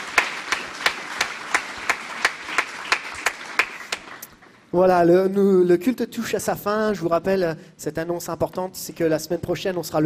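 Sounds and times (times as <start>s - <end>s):
audience clapping in a steady rhythmic beat in a reverberant room: 0.0s - 4.5s
speech: 4.7s - 10.0s.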